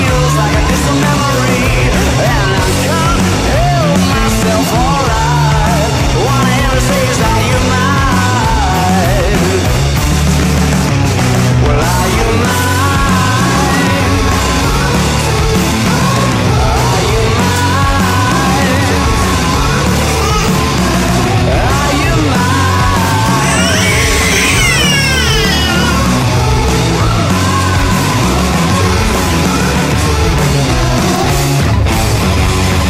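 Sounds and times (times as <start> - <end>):
dense loud guitar music: 0.0 - 32.8
child crying and wailing loudly: 19.8 - 21.4, 23.0 - 26.4.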